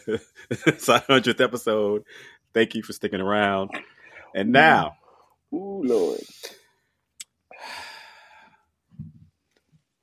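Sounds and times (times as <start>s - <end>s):
laughter: 0.0s - 3.0s
speech: 0.0s - 6.6s
deep inhaled breath through the mouth: 7.6s - 8.6s.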